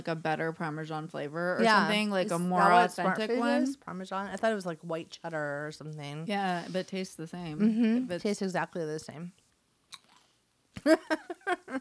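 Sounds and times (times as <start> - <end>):
speech: 0.0 - 9.4, 10.8 - 11.7
chewing crunchy small popcorn: 9.9 - 10.4.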